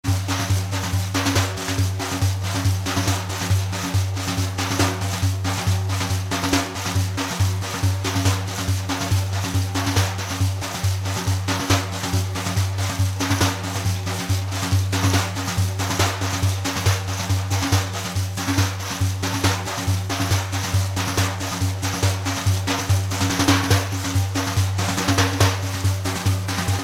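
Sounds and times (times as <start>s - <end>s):
daf solo: 0.1s - 26.8s.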